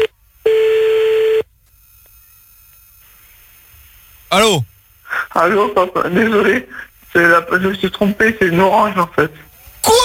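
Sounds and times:
telephone line tone while calling back: 0:00.0 - 0:01.5
speech: 0:04.3 - 0:04.7, 0:05.4 - 0:10.0.

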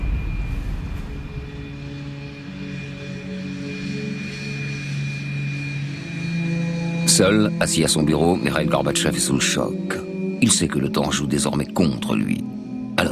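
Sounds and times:
airplane engine droning at an airfield: 0:00.0 - 0:13.0
speech: 0:07.2 - 0:12.6.

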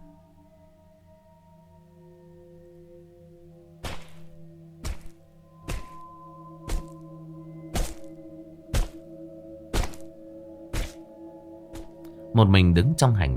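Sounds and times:
bones being chopped inside an apartment: 0:03.8 - 0:06.1, 0:06.7 - 0:07.0, 0:07.7 - 0:08.1, 0:08.7 - 0:09.0, 0:09.7 - 0:10.1, 0:10.7 - 0:11.0
speech: 0:12.4 - 0:13.3.

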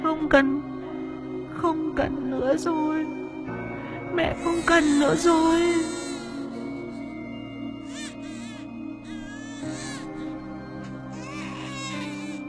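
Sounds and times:
speech: 0:00.2 - 0:00.7, 0:01.6 - 0:03.2, 0:04.2 - 0:06.0
baby crying loudly at night: 0:04.4 - 0:07.2, 0:07.8 - 0:12.4.

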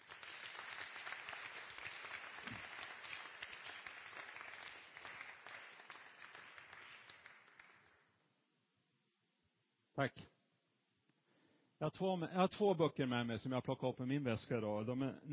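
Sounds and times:
church congregation clapping after a drama performance: 0:00.0 - 0:08.2
speech: 0:10.0 - 0:10.3, 0:11.8 - 0:15.3.

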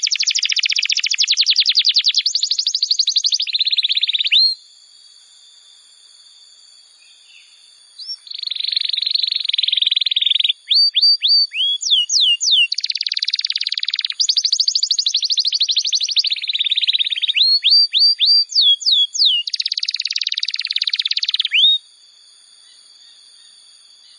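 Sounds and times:
Bar-winged prinia singing buzzy trills and sharp falling whistled notes: 0:00.0 - 0:04.7, 0:06.8 - 0:24.1.

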